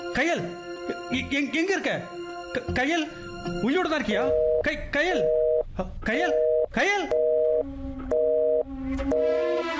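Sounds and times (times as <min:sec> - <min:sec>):
speech: 0:00.2 - 0:07.2
disconnected-call tone beeps of a phone line cutting off: 0:04.3 - 0:05.6, 0:06.3 - 0:09.7.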